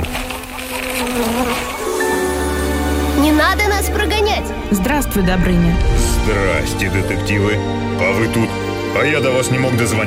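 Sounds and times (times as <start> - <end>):
bees and mosquitoes buzzing in a room: 0.0 - 4.7
speech: 3.5 - 10.0.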